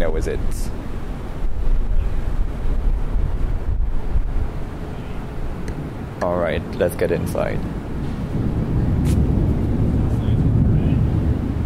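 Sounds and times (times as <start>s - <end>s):
speech: 0.0s - 0.9s, 6.2s - 8.5s
distant thunder rumbling: 0.0s - 11.6s
faint outdoor noise: 0.0s - 11.6s.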